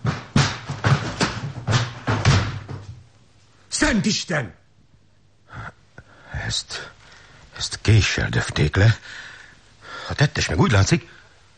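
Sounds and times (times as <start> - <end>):
thuds and bangs against a locked wooden door being broken open: 0.0 - 3.0
speech: 3.9 - 4.6, 6.5 - 7.0, 7.6 - 9.3, 10.1 - 11.2.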